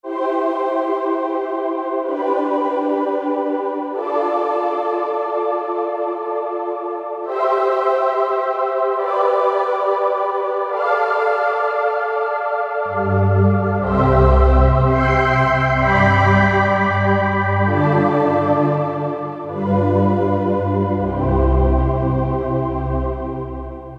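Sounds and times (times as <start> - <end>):
Korg N364 synthesizer: 0.0 - 23.9.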